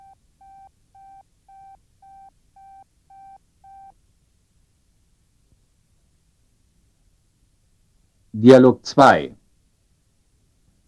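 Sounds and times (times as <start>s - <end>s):
telephone busy signal on a call that will not connect: 0.0s - 3.9s
speech: 8.4s - 9.4s.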